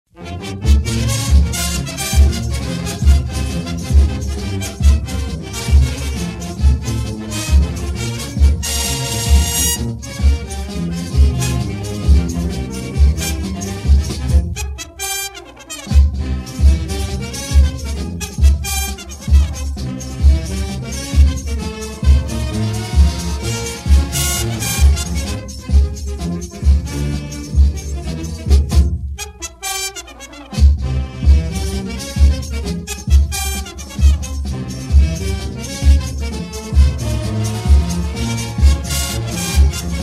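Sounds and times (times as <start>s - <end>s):
frevo music: 0.1s - 40.0s.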